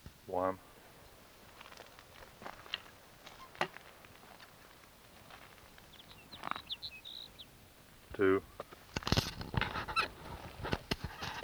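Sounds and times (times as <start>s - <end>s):
speech: 0.3s - 0.7s
soft ticking and pattering: 1.1s - 11.4s
sage sparrow singing: 5.6s - 8.8s.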